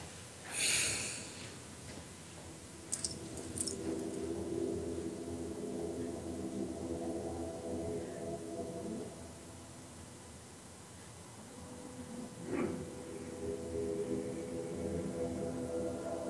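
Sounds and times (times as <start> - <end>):
deep breath: 0.4 - 1.6
low sustained drone: 2.7 - 10.7, 11.3 - 16.2.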